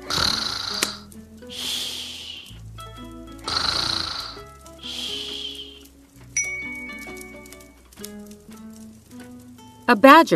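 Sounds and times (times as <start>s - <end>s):
bear snoring loudly: 0.0s - 2.6s, 3.4s - 5.9s
soft twinkling music: 0.3s - 10.3s
speech: 9.9s - 10.3s.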